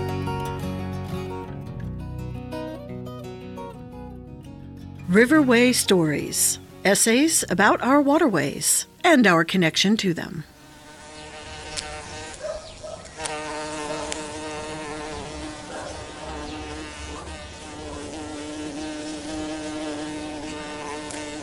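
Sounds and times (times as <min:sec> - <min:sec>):
speech: 0:05.1 - 0:10.5
bumblebee buzzing: 0:05.1 - 0:21.4.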